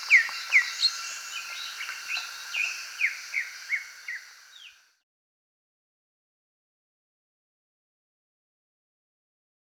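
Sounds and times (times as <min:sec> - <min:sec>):
greater green leafbird song of downslurred whistled notes: 0:00.0 - 0:04.9
soft hiss: 0:00.0 - 0:04.9.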